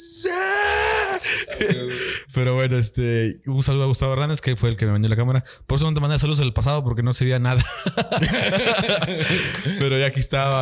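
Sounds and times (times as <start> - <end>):
person shouting excitedly at a high strained pitch: 0.0 - 1.9
speech: 0.2 - 10.6
laughter: 1.4 - 2.0, 7.6 - 10.2.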